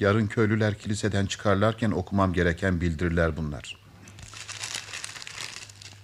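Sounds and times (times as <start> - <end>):
speech: 0.0 - 3.8
paper package torn open and unwrapped: 4.2 - 6.0.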